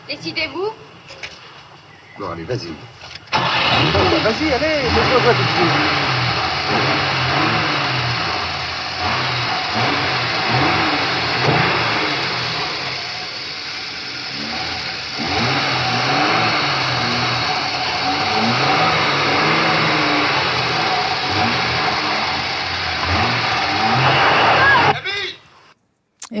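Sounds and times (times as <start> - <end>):
speech: 0.1 - 1.2, 2.2 - 7.5
car engine revving as the car pulls away: 2.6 - 25.7
voices: 24.0 - 25.4.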